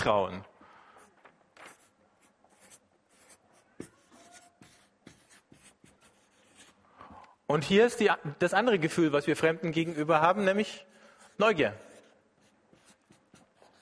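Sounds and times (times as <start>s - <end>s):
speech: 0.0s - 0.5s, 7.5s - 11.9s
pen or pencil scratching across paper: 1.7s - 6.8s, 12.0s - 13.8s.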